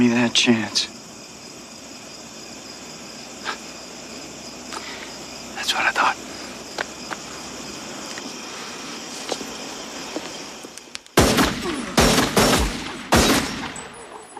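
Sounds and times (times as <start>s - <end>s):
quiet tense ambient hum: 0.0s - 14.3s
speech: 0.2s - 1.0s
loud gunshots in a film scene: 11.2s - 14.0s.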